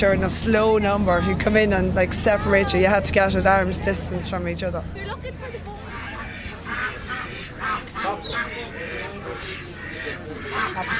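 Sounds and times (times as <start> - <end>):
speech: 0.0 - 5.8
steady low rumble: 0.0 - 10.9
flock of African geese honking: 5.4 - 10.9.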